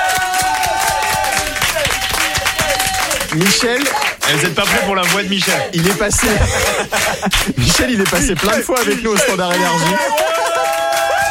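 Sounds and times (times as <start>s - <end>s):
whistling and cheering: 0.0s - 4.4s, 9.5s - 11.2s
dense applause from a sizable audience: 0.0s - 11.2s
laughter: 0.6s - 11.2s
speech: 3.4s - 10.6s.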